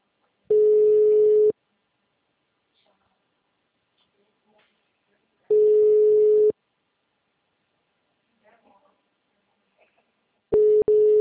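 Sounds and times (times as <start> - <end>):
ringback tone of an unanswered phone call: 0.5 - 1.5, 5.5 - 6.5, 10.6 - 11.1.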